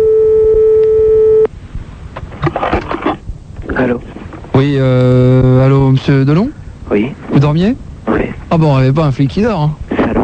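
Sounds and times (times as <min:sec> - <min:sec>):
ringing tone of an outgoing telephone call from a radio studio: 0:00.0 - 0:01.5
faint low noise: 0:00.0 - 0:10.2
speech: 0:04.6 - 0:09.8.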